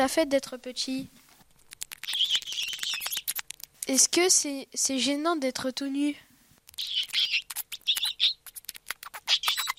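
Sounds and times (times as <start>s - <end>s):
speech: 0.0s - 1.2s, 3.9s - 6.3s
gerbil squeaking: 1.7s - 3.7s, 6.7s - 9.7s.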